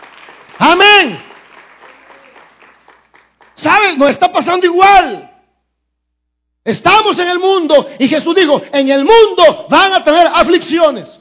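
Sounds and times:
audience applause: 0:00.0 - 0:03.6
speech: 0:03.6 - 0:05.3, 0:06.6 - 0:11.1.

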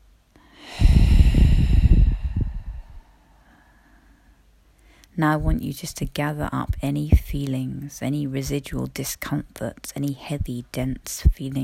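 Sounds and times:
deep breath in during a meditation session: 0:00.4 - 0:05.1
speech: 0:05.2 - 0:11.6.

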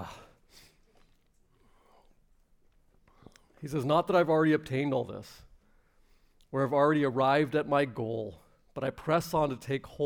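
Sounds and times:
short breathy sniff: 0:00.5 - 0:02.2
speech: 0:03.6 - 0:05.5, 0:06.5 - 0:10.0.

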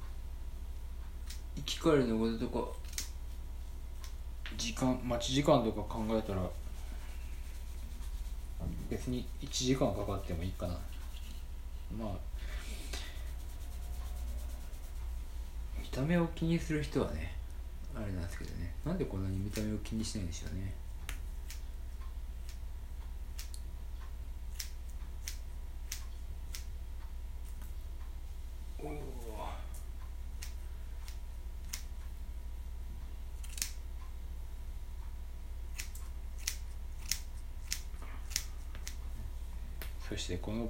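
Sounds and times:
low hum: 0:00.0 - 0:40.6
scissors snipping hair: 0:01.2 - 0:01.4, 0:02.8 - 0:03.2, 0:06.0 - 0:11.4, 0:19.2 - 0:21.7, 0:22.4 - 0:22.6, 0:23.3 - 0:23.7, 0:24.5 - 0:26.7, 0:30.4 - 0:32.0, 0:33.4 - 0:33.8, 0:35.7 - 0:39.0
speech: 0:01.6 - 0:02.8, 0:04.6 - 0:06.6, 0:08.9 - 0:11.0, 0:11.9 - 0:12.5, 0:16.0 - 0:17.4, 0:18.0 - 0:20.8.

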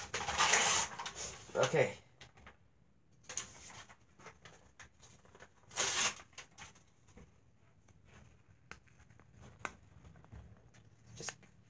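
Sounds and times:
paper torn by hand as a divider inside a container: 0:00.0 - 0:01.4, 0:05.3 - 0:06.6
speech: 0:01.6 - 0:02.0.

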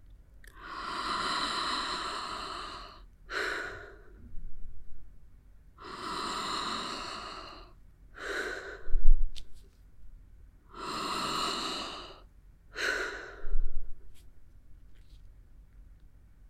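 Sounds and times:
deep connected breathing, inhale and exhale: 0:00.6 - 0:04.7, 0:05.8 - 0:09.3, 0:10.7 - 0:14.1.

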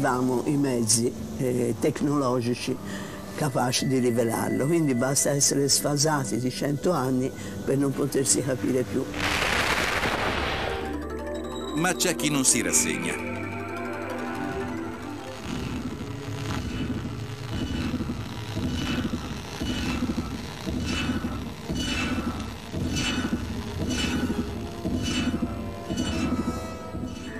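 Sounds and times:
speech: 0:00.0 - 0:09.6, 0:11.8 - 0:13.3
bright bursts of radio static: 0:09.1 - 0:11.0, 0:14.4 - 0:25.9
low droning hum of radio signal: 0:13.2 - 0:27.3.

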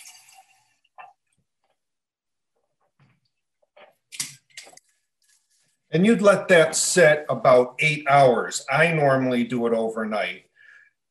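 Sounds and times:
water pouring into a glass jar of adzuki seeds for soaking: 0:00.0 - 0:01.2
speech: 0:05.9 - 0:10.5.

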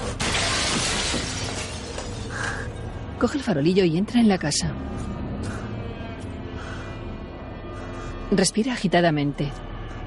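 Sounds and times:
glass window smashed with a brick: 0:00.0 - 0:02.3
bright clatter of shattering glass and falling shards: 0:00.1 - 0:02.4
speech: 0:03.2 - 0:05.1, 0:08.3 - 0:09.7.

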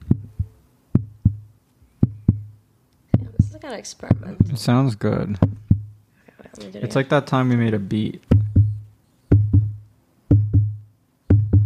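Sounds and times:
heart beating: 0:00.0 - 0:02.6, 0:03.2 - 0:04.7, 0:05.3 - 0:06.0, 0:08.3 - 0:11.6
speech: 0:03.6 - 0:05.6, 0:06.6 - 0:08.3.

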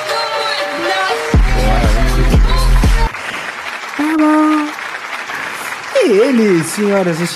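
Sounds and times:
loud crowd cheering and shouting: 0:00.1 - 0:03.1
clapping: 0:03.1 - 0:07.3
speech: 0:06.3 - 0:07.3.

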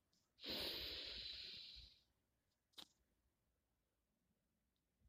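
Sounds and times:
breath in through the mouth during a breathing exercise: 0:00.4 - 0:02.0
long voiced ah exhaled through the mouth: 0:00.4 - 0:02.0.

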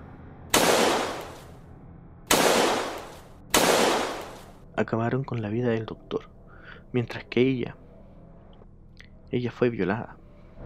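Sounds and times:
gunshots with tail: 0:00.5 - 0:01.5, 0:02.3 - 0:04.5
speech: 0:04.8 - 0:07.8, 0:09.3 - 0:10.2.

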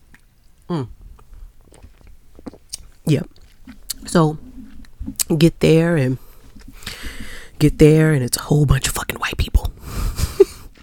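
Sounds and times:
sip and gulp of Pepsi from a red cup: 0:00.1 - 0:05.3, 0:06.2 - 0:07.6
swallowing noises: 0:00.1 - 0:05.4, 0:06.2 - 0:07.5
speech: 0:00.7 - 0:01.0, 0:03.1 - 0:03.4, 0:04.1 - 0:04.4, 0:05.3 - 0:06.2, 0:07.6 - 0:09.0
quiet wet mouth clicks: 0:01.2 - 0:05.4
short voiced exhale: 0:06.8 - 0:07.6.

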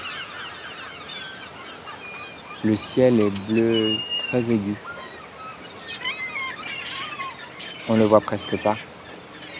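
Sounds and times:
huge flock of gulls calling: 0:00.0 - 0:09.5
speech: 0:02.6 - 0:04.9, 0:07.9 - 0:08.9.

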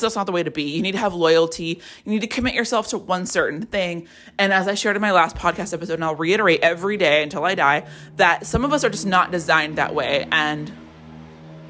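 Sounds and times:
speech: 0:00.0 - 0:10.8
motorcycle passing by outside: 0:04.8 - 0:11.6.

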